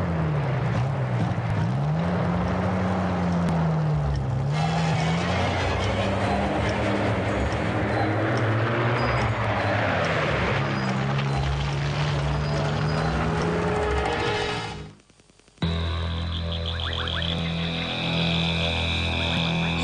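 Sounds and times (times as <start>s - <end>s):
heavy truck engine rumbling as it drives off: 0.0s - 19.8s
constant broadband noise: 13.3s - 19.8s.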